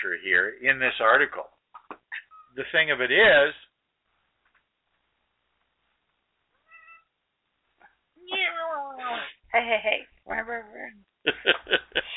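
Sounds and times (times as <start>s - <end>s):
speech: 0.0s - 1.6s, 2.6s - 3.6s, 9.5s - 12.1s
female cat meowing: 6.6s - 7.2s
laughter: 11.3s - 12.1s.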